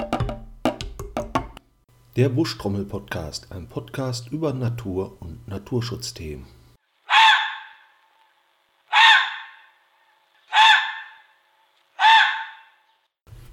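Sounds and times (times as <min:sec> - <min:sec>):
speech: 0:02.2 - 0:06.6
red fox barking: 0:07.0 - 0:08.0, 0:08.9 - 0:12.9.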